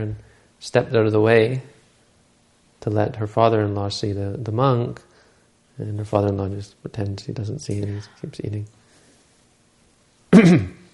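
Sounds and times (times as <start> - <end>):
speech: 0.0 - 1.7, 2.8 - 5.1, 5.8 - 8.8, 10.3 - 10.8
woman clearing her throat: 10.3 - 10.9.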